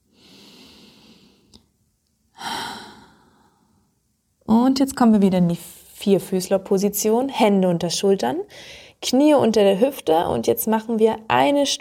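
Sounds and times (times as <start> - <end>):
slow breathing in and out during a floor exercise: 0.0 - 1.7, 2.3 - 4.0, 8.5 - 9.0
speech: 4.5 - 11.8.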